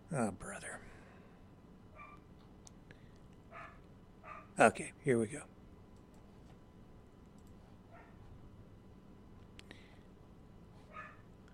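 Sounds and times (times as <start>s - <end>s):
steady low hum: 0.0s - 11.5s
speech: 0.1s - 0.8s, 4.6s - 5.5s
dog barking: 2.0s - 2.2s, 3.5s - 4.6s, 7.9s - 8.2s, 10.8s - 11.3s.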